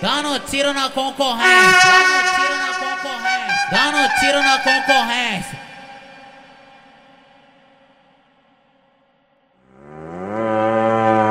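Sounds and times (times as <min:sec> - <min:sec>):
speech: 0:00.0 - 0:02.4, 0:03.7 - 0:05.6
cattle mooing: 0:09.7 - 0:11.2.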